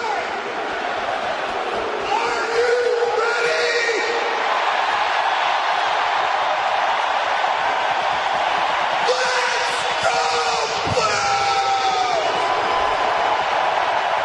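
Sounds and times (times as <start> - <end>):
man bellowing through an arena public-address system: 0.0 - 0.4, 2.0 - 4.3, 9.0 - 12.4
large crowd cheering: 0.0 - 14.2.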